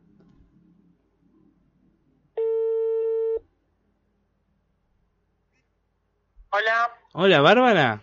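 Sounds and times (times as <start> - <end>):
loud steady electronic phone ringback tone: 2.4 - 3.4
speech: 6.6 - 8.0.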